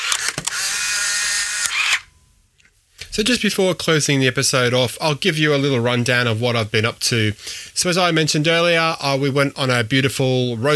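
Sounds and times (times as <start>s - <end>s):
Polaroid SLR 680 SE instant camera shutter clicks: 0.0s - 2.1s
speech: 3.2s - 10.7s.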